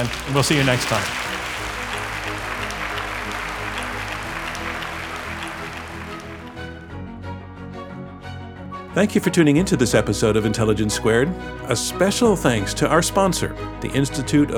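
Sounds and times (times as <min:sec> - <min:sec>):
speech: 0:00.0 - 0:01.3, 0:09.0 - 0:14.5
large live audience applauding after a debate at a food technology expo: 0:00.0 - 0:06.9
music: 0:00.0 - 0:14.5.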